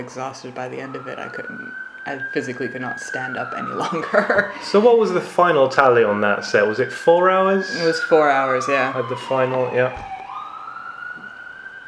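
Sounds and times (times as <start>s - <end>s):
speech: 0.0s - 10.1s
emergency vehicle siren wailing outside: 0.0s - 11.8s
laughter: 3.8s - 5.0s.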